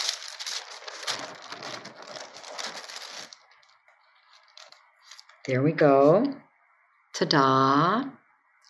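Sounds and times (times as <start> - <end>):
blank sheet of paper rustling while handled and laid down: 0.0 - 5.5
faint steady hum: 0.0 - 8.6
speech: 5.5 - 6.4, 7.2 - 8.2.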